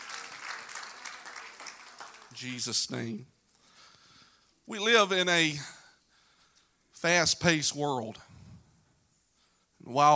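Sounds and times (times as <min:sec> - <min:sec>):
seated audience clapping at a morning church service: 0:00.0 - 0:02.8
speech: 0:02.4 - 0:03.4, 0:04.7 - 0:05.8, 0:07.0 - 0:08.3, 0:09.9 - 0:10.1.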